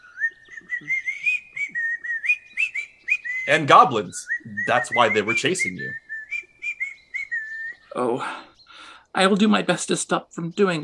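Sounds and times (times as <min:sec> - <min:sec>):
person whistling a wavering melody: 0:00.0 - 0:07.8
faint low noise: 0:00.0 - 0:10.8
speech: 0:03.5 - 0:06.0, 0:08.0 - 0:08.5, 0:09.2 - 0:10.8.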